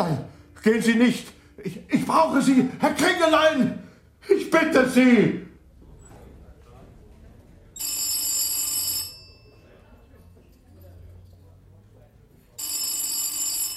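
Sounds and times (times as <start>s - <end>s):
speech: 0.0s - 5.5s
hotel porter's telephone bell ringing: 7.8s - 9.8s, 12.6s - 13.7s.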